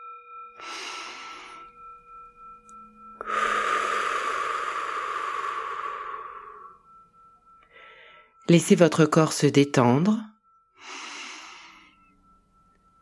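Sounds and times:
faint steady tone: 0.0s - 9.0s, 10.3s - 13.0s
deep breathing during a relaxation exercise: 0.6s - 1.8s, 3.2s - 7.0s, 7.6s - 8.4s, 10.8s - 12.2s
speech: 8.5s - 11.0s.

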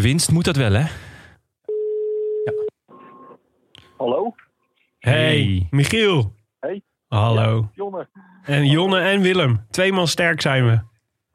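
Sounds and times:
speech: 0.0s - 1.1s, 5.0s - 10.9s
telephone ringback tone while a call is being placed: 1.7s - 3.4s.

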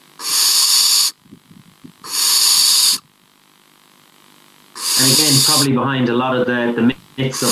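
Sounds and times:
soft rasping snore-like call of young barn owls: 0.2s - 1.2s, 2.1s - 3.0s, 4.8s - 5.7s, 7.3s - 7.5s
young barn owls hissing in the nest: 0.2s - 1.2s, 2.0s - 3.1s, 4.8s - 5.7s, 7.3s - 7.5s
speech: 5.0s - 7.5s.

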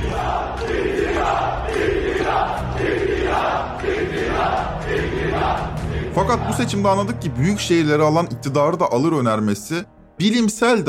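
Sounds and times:
large crowd chanting in unison at a rally: 0.0s - 7.1s
speech: 6.2s - 10.8s.

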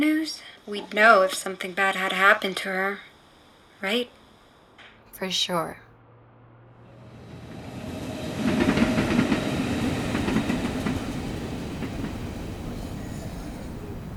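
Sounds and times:
speech: 0.0s - 3.1s, 3.8s - 4.2s, 5.2s - 5.8s
train wheels clacking on rails: 7.0s - 14.1s.

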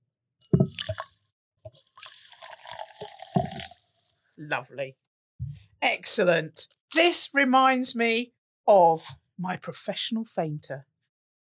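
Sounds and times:
sparkling water pouring: 0.6s - 1.1s, 1.7s - 4.2s
bottle clunks: 3.3s - 3.7s
speech: 4.4s - 5.1s, 5.8s - 10.9s.

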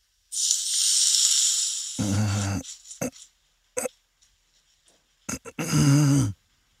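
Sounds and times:
hot oil sizzling poured over garlic and potatoes: 0.0s - 3.0s.

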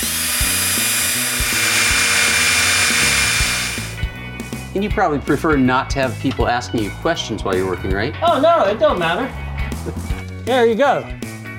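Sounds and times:
power drill grinding into a metal safe: 0.0s - 4.1s
speech: 4.8s - 11.5s.

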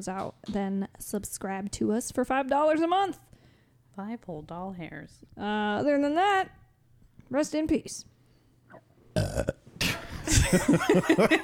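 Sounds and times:
speech: 0.0s - 3.3s, 4.0s - 6.6s, 7.3s - 8.1s, 8.8s - 9.6s, 10.3s - 11.4s
burp: 9.2s - 9.6s
laughter: 10.0s - 11.4s.

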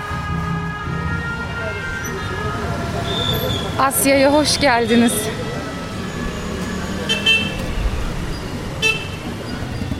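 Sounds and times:
steady roar of two-way traffic on a main street in Asia: 0.0s - 9.9s
speech: 3.8s - 5.4s
short car horn toots: 7.1s - 7.6s, 8.8s - 9.2s.

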